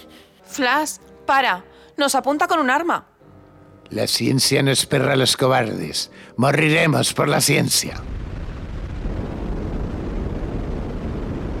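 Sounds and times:
speech: 0:00.6 - 0:03.1, 0:03.9 - 0:08.3
rocket ship launching with thunderous roar: 0:08.0 - 0:11.5.

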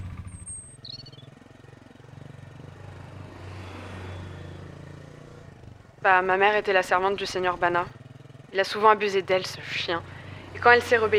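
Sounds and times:
high whistling chirp: 0:00.0 - 0:01.3
hovercraft scooter engine starting and speeding off: 0:00.0 - 0:01.3
speech: 0:06.0 - 0:11.1.

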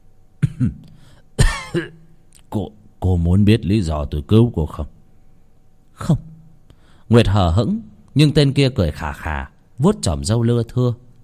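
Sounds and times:
man seated under a tree coughing: 0:00.4 - 0:02.1
speech: 0:00.6 - 0:00.9, 0:01.7 - 0:05.0, 0:06.0 - 0:06.3, 0:07.1 - 0:11.0.

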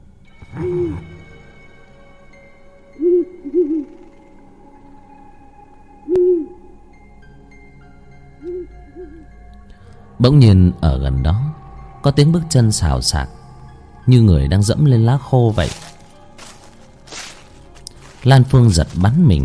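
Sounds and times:
owl hooting in a Central Highlands forest at night: 0:00.4 - 0:01.4, 0:02.9 - 0:05.0, 0:05.9 - 0:06.9, 0:08.2 - 0:09.4
speech: 0:10.2 - 0:13.4, 0:14.1 - 0:15.9, 0:18.2 - 0:19.4.

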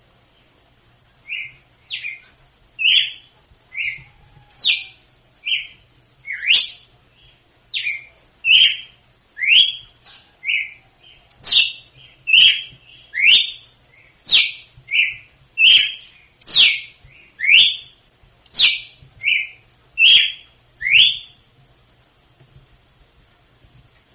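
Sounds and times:
female red-cowled cardinal singing in Northeast Brazil style: 0:02.8 - 0:03.2, 0:03.8 - 0:06.9, 0:07.7 - 0:17.9, 0:18.5 - 0:21.4.

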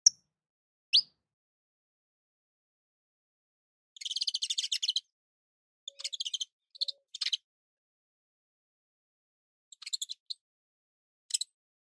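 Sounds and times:
Portuguese canary singing buzzy trill and rattling bursts: 0:04.0 - 0:05.1, 0:05.9 - 0:07.5, 0:09.7 - 0:10.4.

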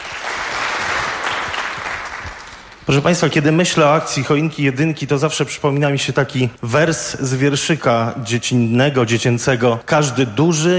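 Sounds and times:
audience applause at a charity auction event: 0:00.0 - 0:02.8
speech: 0:02.9 - 0:10.7.

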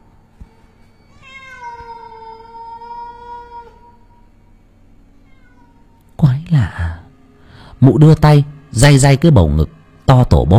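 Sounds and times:
large black cat wailing mournfully outside: 0:01.1 - 0:04.4, 0:05.1 - 0:06.1
speech: 0:06.2 - 0:06.8, 0:07.8 - 0:10.5.

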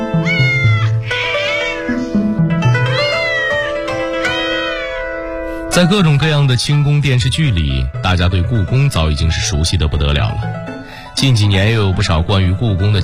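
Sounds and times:
cat meowing loudly at the Forbidden City palace in Beijing: 0:00.1 - 0:02.0, 0:02.8 - 0:05.2
speech: 0:05.8 - 0:13.0.

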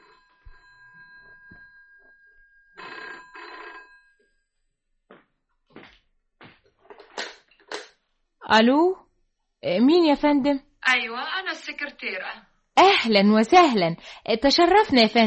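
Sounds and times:
telephone bell ringing: 0:00.0 - 0:04.9
speech: 0:08.5 - 0:09.0, 0:09.6 - 0:15.2.

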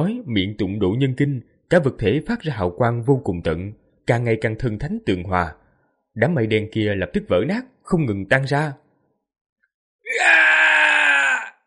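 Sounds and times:
speech: 0:00.0 - 0:05.6, 0:06.2 - 0:08.8, 0:10.1 - 0:10.5
loud sustained scream of two voices: 0:10.0 - 0:11.6.

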